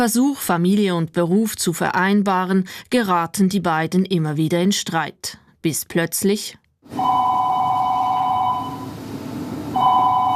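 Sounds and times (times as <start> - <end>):
speech: 0.0 - 7.3
telephone ringing with an electronic trill during a stage production: 6.9 - 9.1, 9.7 - 10.3.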